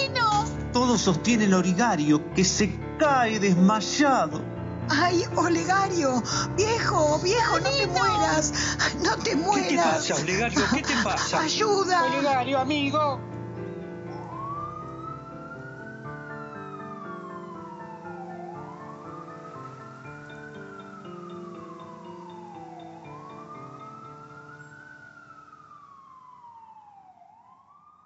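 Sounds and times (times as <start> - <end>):
ambulance siren wailing in rising and falling sweeps: 0.0 - 28.0
speech: 0.9 - 13.3
laughter: 6.6 - 12.6.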